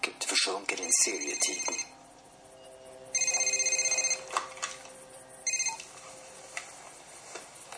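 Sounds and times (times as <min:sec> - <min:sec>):
speech: 0:00.4 - 0:02.0
mobile phone ringing with an incoming call: 0:01.1 - 0:02.0, 0:02.6 - 0:06.2.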